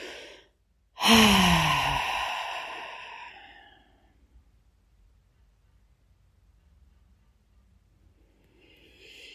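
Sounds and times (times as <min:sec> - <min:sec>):
deep breath blown out through the mouth during a guided relaxation exercise: 0:01.0 - 0:03.7.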